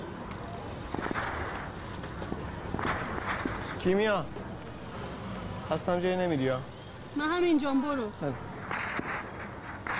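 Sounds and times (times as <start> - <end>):
high-pitched telephone ringing: 0.3 - 3.2, 6.5 - 9.9
speech: 3.8 - 4.4, 5.7 - 8.5.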